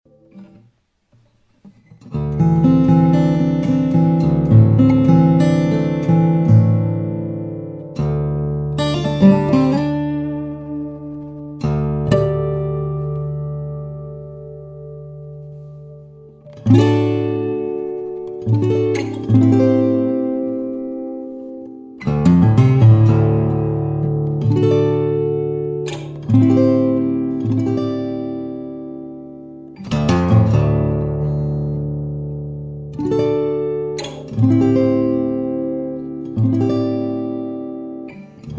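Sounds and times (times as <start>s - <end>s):
granadillo guitar playing: 0.1s - 38.5s.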